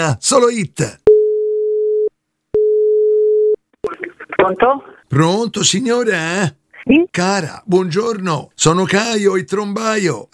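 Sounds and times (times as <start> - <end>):
speech: 0.0 - 1.0, 4.4 - 10.3
telephone line tone beeps before call connects: 1.1 - 3.6.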